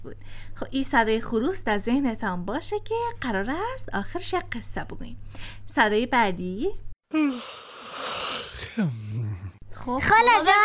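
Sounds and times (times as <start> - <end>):
speech: 0.0 - 7.7, 8.6 - 9.1, 9.8 - 10.6
person yawning: 7.1 - 9.6.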